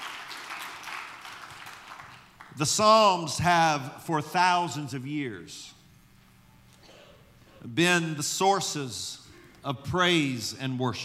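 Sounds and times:
audience hand clapping: 0.0 - 2.6
speech: 2.6 - 5.8, 7.6 - 11.0.

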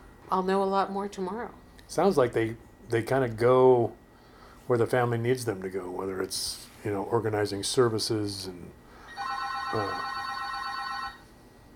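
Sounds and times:
speech: 0.3 - 4.0, 4.7 - 8.8, 9.7 - 10.1
telephone ringing: 9.1 - 11.3.

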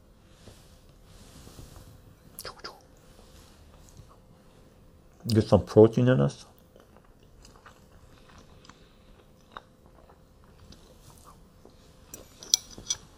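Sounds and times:
speech: 5.3 - 6.5
chewing and biting while eating eggs: 6.7 - 11.4
cutlery or dishes clinking: 12.2 - 13.1.

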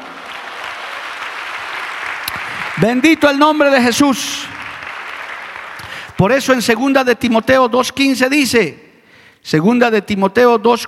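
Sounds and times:
church audience applauding during a sermon: 0.0 - 6.3
speech: 2.8 - 4.6, 6.2 - 8.8, 9.4 - 10.8.

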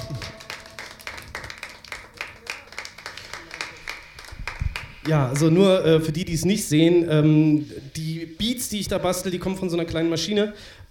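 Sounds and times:
audience applauding: 0.0 - 5.6
speech: 5.0 - 10.9.

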